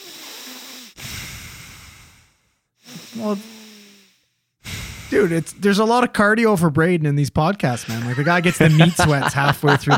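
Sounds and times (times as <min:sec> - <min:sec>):
person imitating loud heavy breathing against the microphone: 0:00.0 - 0:05.5
speech: 0:03.2 - 0:03.6, 0:05.1 - 0:09.9
laughter: 0:07.7 - 0:09.9.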